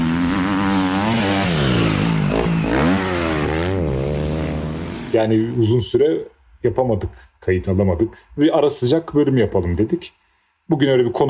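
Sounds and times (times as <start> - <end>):
motorcycle engine revving: 0.0 - 5.6
speech: 5.2 - 11.2.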